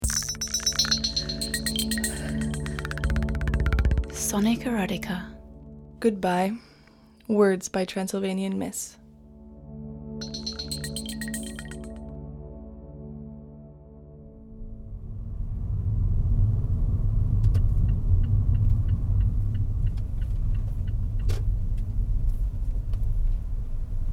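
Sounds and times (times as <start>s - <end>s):
steady electronic tone: 0.0s - 5.1s, 10.2s - 12.1s
speech: 4.3s - 5.4s, 6.0s - 6.7s, 7.3s - 9.0s
car engine and road noise rolling to a stop: 14.6s - 24.1s.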